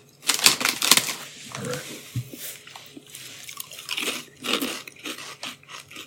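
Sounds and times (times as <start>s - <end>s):
honey jalapeno snack chips being bitten and chewed: 0.0s - 1.3s, 3.0s - 6.0s.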